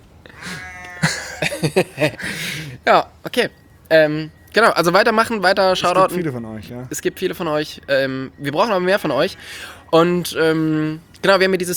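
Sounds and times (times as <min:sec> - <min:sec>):
donkey braying: 0:00.0 - 0:11.2
sheep bleating: 0:00.3 - 0:01.6
laughter: 0:00.4 - 0:02.8
speech: 0:01.6 - 0:11.7.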